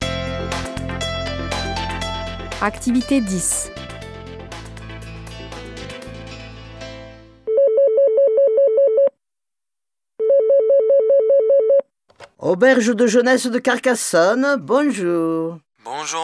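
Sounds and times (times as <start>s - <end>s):
music: 0.0s - 7.5s
speech: 2.6s - 3.8s, 12.5s - 16.2s
telephone ringing with loud warbling electronic ring: 7.5s - 9.1s, 10.2s - 11.8s.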